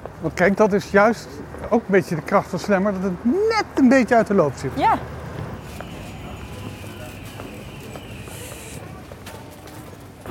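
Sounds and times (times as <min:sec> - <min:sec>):
outdoor traffic and street noise: 0:00.0 - 0:10.2
speech: 0:00.2 - 0:05.2
footsteps of people walking along a city street: 0:05.4 - 0:10.2
brief hiss: 0:05.6 - 0:08.9.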